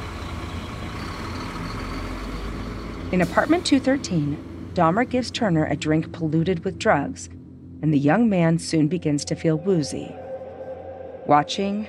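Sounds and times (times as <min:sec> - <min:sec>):
Greyhound bus engine idling: 0:00.0 - 0:06.9
speech: 0:03.1 - 0:10.2, 0:11.2 - 0:11.8.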